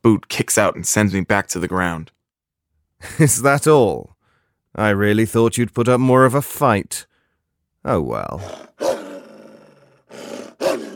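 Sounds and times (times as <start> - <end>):
speech: 0.0 - 2.2, 3.0 - 4.1, 4.7 - 7.1, 7.8 - 8.8
decaying wolf growling and snarling: 8.4 - 10.9.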